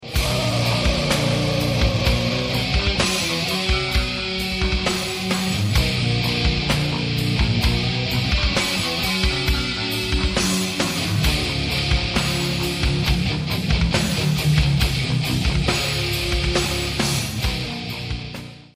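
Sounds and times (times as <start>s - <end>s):
electric guitar riff: 0.0s - 18.5s.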